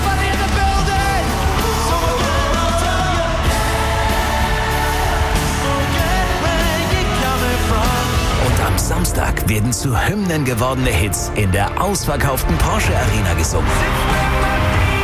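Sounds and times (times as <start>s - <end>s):
large concert crowd screaming: 0.0s - 8.6s
speech: 9.5s - 14.5s.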